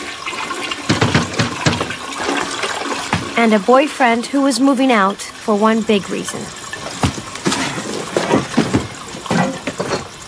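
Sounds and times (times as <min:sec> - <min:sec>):
toilet in a home flushing: 0:00.0 - 0:10.2
speech: 0:03.4 - 0:06.6.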